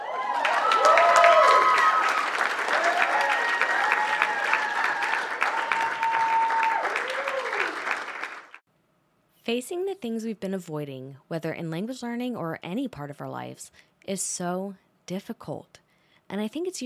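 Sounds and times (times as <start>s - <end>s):
whooping cheers: 0.0s - 8.4s
crowd applause: 0.0s - 8.6s
speech: 9.5s - 16.8s.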